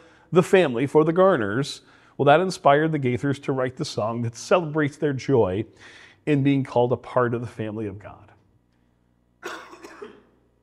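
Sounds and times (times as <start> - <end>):
speech: 0.3 - 8.3
person coughing: 9.4 - 10.5.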